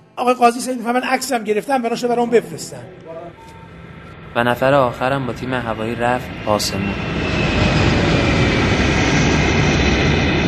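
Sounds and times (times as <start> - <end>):
speech: 0.2 - 3.6, 4.4 - 7.3
Falcon 50 business jet engine roaring: 1.9 - 10.4.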